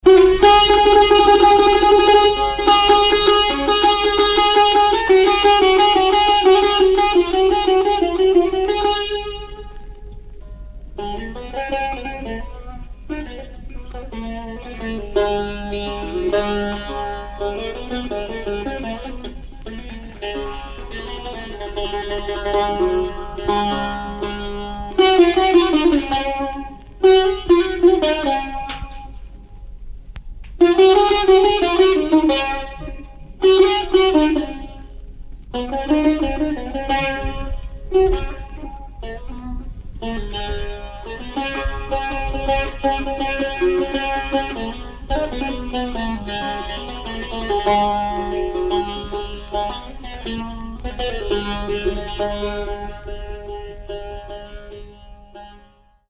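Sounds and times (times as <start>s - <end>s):
solo saz playing: 0.0s - 29.9s, 30.6s - 56.0s.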